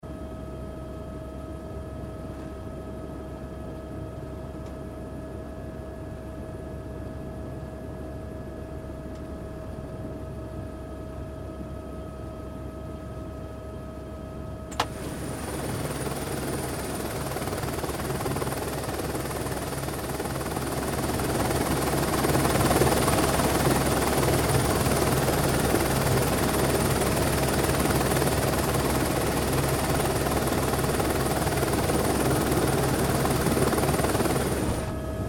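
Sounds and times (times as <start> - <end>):
helicopter flying and idling: 14.7 - 35.2.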